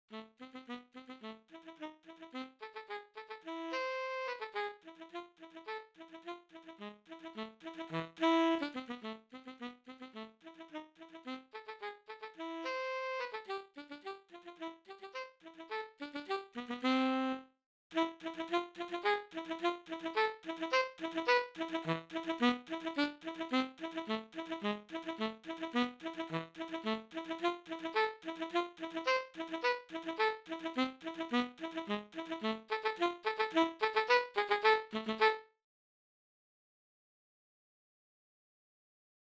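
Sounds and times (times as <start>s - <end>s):
tenor saxophone: 0.1s - 35.5s.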